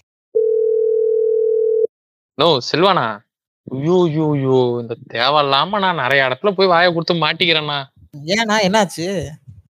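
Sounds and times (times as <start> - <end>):
steady electronic telephone tone: 0.4 - 1.9
speech: 2.4 - 9.5.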